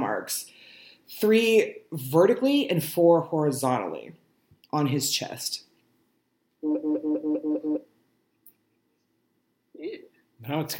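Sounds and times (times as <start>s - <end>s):
speech: 0.2s - 0.5s, 1.2s - 5.7s, 6.6s - 7.2s, 9.8s - 10.7s
phone vibrating on silent mode: 6.6s - 7.9s.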